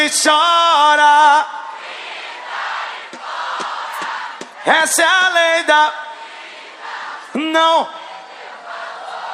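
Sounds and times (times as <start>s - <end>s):
speech: 0.1s - 2.1s, 4.7s - 6.1s, 7.3s - 8.0s
large crowd screaming loudly: 1.7s - 9.3s
sharp clap-like hits: 3.1s - 4.6s.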